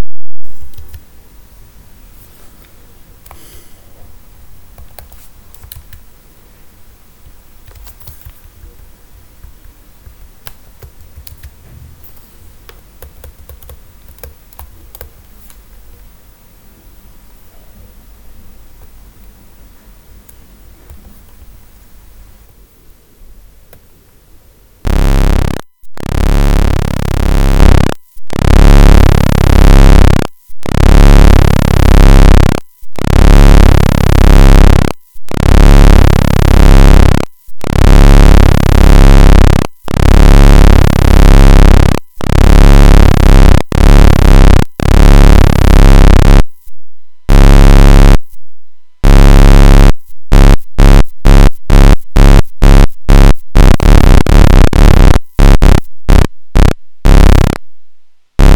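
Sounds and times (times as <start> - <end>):
pulse width modulation tone: 24.9 - 48.4, 49.0 - 57.6, 58.4 - 58.5.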